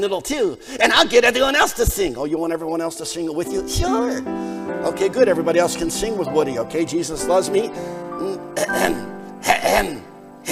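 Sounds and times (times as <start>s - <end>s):
speech: 0.0s - 10.5s
person clearing throat: 8.3s - 9.1s.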